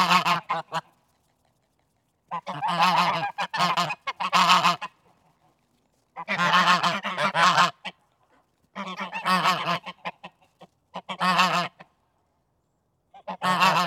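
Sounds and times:
geese honking outdoors: 0.0s - 0.9s, 2.3s - 5.0s, 6.2s - 8.0s, 8.8s - 10.4s, 11.0s - 11.9s, 13.2s - 13.8s.

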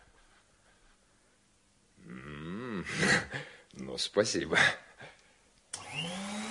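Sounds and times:
speech: 4.0s - 4.8s
vacuum cleaner motor running: 5.8s - 6.4s.

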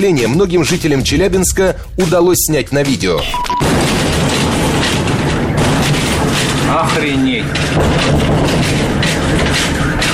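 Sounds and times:
speech: 0.0s - 4.0s, 6.7s - 9.7s
meteorite explosion booms in the Chelyabinsk region of Russia: 3.5s - 10.1s.

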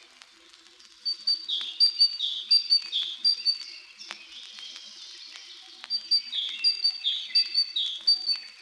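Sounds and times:
Great Tit ringing calls: 1.1s - 3.6s, 5.9s - 8.4s.

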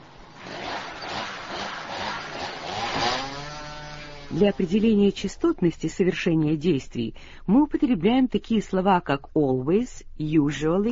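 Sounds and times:
motorized saw cutting a tree: 0.0s - 4.9s
speech: 4.3s - 10.9s.

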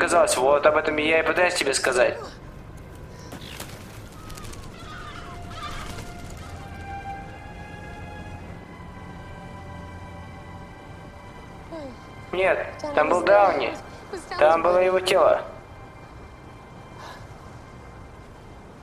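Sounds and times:
speech: 0.1s - 2.4s, 12.4s - 15.5s
rustling or flapping: 2.8s - 7.6s
birds cooing and calling: 3.0s - 7.0s.

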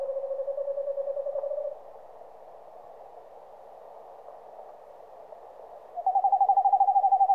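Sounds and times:
Eastern screech owl trilling in rapid pulses: 0.0s - 1.8s, 6.0s - 7.3s
soft hiss: 0.0s - 7.3s.

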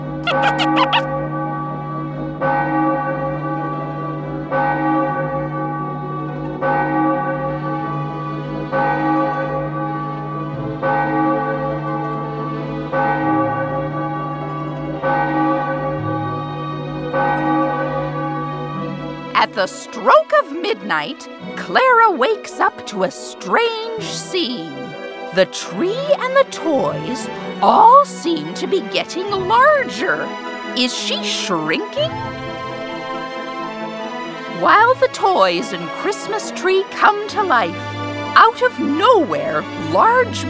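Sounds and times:
loud resonant bells ringing: 0.0s - 40.4s
brief bright jingle: 0.2s - 1.1s, 19.4s - 33.1s, 34.5s - 40.4s
speech: 0.2s - 1.2s, 19.6s - 32.7s, 34.6s - 40.4s.

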